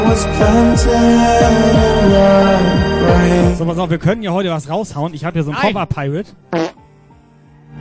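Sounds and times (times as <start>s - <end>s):
speech: 0.2s - 2.2s, 3.3s - 6.7s
fart: 6.5s - 6.8s.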